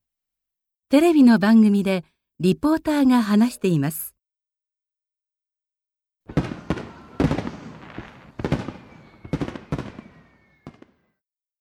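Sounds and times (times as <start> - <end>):
speech: 0.9 - 4.1
fireworks exploding over the Sumida River in Tokyo: 6.3 - 11.0.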